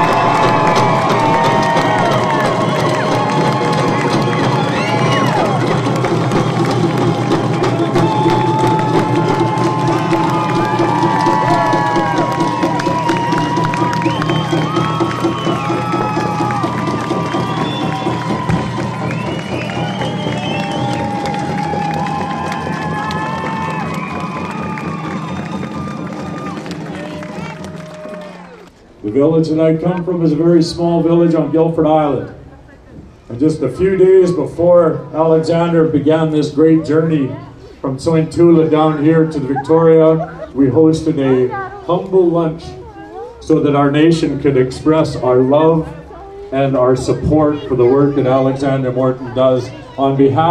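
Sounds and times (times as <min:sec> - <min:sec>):
whoops and shouts: 0:00.0 - 0:05.8, 0:07.6 - 0:28.7
large crowd clapping: 0:00.0 - 0:29.2
speech: 0:29.4 - 0:32.4, 0:33.4 - 0:42.8, 0:43.5 - 0:50.4
laughter: 0:38.6 - 0:41.9.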